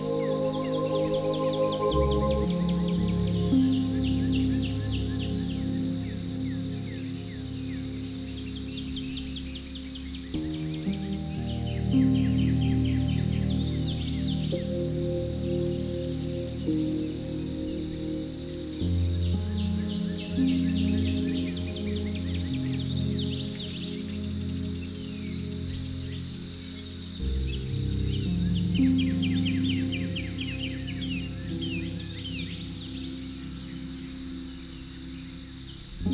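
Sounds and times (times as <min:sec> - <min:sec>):
birds chirping and trilling on a forest morning: 0:00.0 - 0:36.1
soft sustained low tones: 0:00.0 - 0:36.1.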